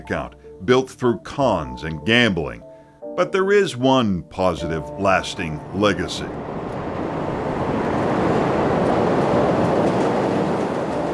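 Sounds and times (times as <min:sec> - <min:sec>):
speech: 0:00.0 - 0:06.5
elevated train rumbling along the tracks: 0:05.4 - 0:11.1.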